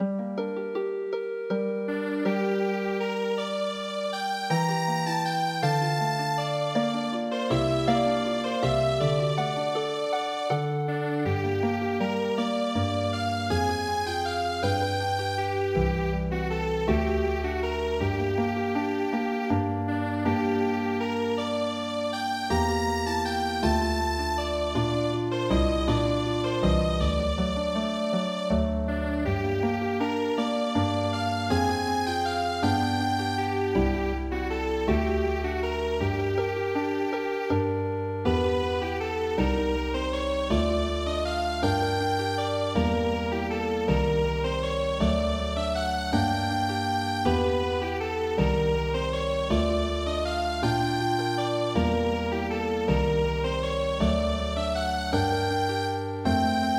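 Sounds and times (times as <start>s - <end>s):
healing harp piece: 0.0s - 56.7s.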